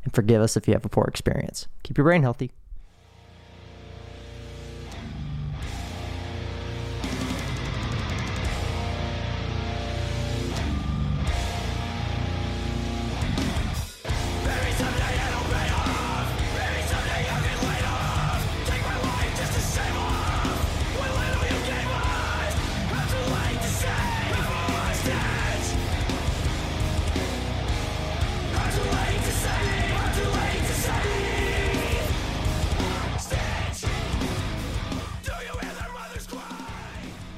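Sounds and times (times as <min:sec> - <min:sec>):
speech: 0:00.2 - 0:02.6
distorted guitars in heavy rock: 0:02.8 - 0:37.3
pounding drums in heavy rock: 0:13.4 - 0:37.3.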